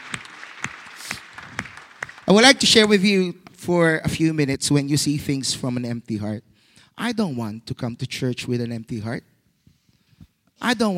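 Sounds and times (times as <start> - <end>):
audience applauding: 0.0 - 3.1
speech: 2.3 - 9.3, 10.6 - 10.9.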